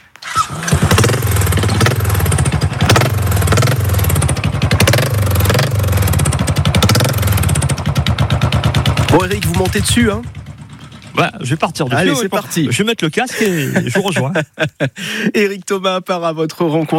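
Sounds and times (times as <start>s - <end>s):
motorcycle engine starting and idling: 0.1s - 12.8s
speech: 9.2s - 10.4s, 11.2s - 16.9s
laughter: 12.0s - 15.4s.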